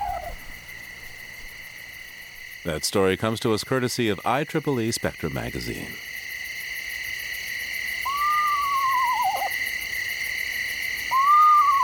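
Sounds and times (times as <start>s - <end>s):
eastern screech owl whinny call: 0.0s - 0.5s, 8.0s - 9.7s, 11.0s - 11.8s
chorus of night insects buzzing: 0.0s - 11.8s
speech: 2.6s - 6.2s.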